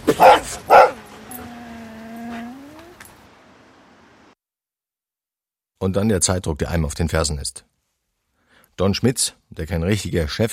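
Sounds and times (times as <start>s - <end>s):
dog whimpering in a long wavering whine: 0.1s - 3.2s
speech: 5.8s - 7.8s, 8.8s - 10.5s.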